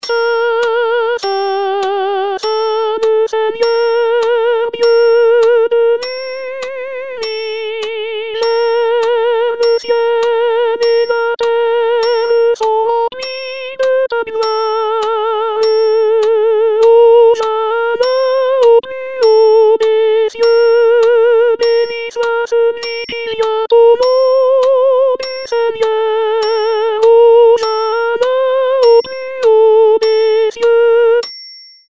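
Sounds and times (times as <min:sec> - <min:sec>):
soprano singing a chorale: 0:00.1 - 0:31.2.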